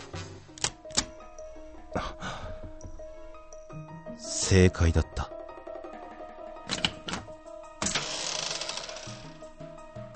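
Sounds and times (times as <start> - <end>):
quiet sustained tonal background: 0.0 - 10.1
key sliding into a door lock: 0.6 - 1.2
speech: 2.0 - 2.4, 4.2 - 5.1.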